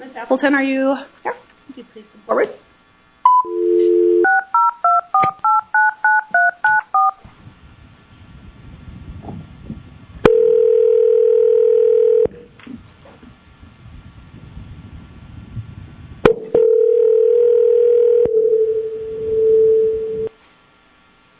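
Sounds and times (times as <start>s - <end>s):
speech: 0.2s - 2.7s
long steady telephone tones: 3.2s - 7.2s, 10.3s - 12.4s, 16.3s - 20.3s
two-tone telephone keypad beeps: 3.3s - 7.2s.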